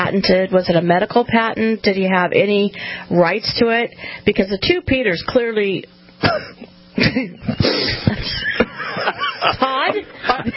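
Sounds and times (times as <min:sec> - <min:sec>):
speech: 0:00.1 - 0:10.5
person coughing harshly: 0:06.2 - 0:06.7
rough throat-clearing: 0:06.2 - 0:06.7
laughter: 0:06.2 - 0:10.5.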